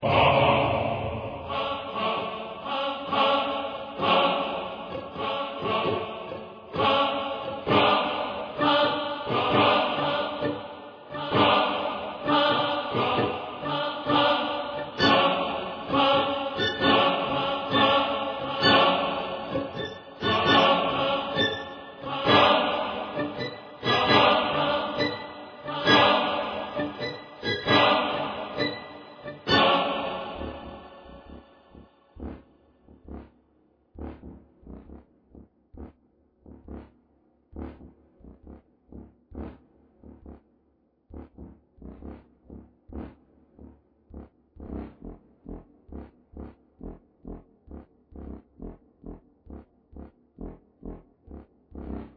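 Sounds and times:
dark choir: 0.0s - 32.6s
strings: 4.0s - 31.1s.

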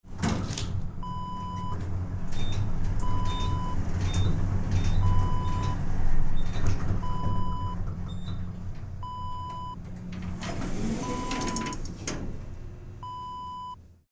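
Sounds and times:
elevator interior: 0.0s - 14.0s.

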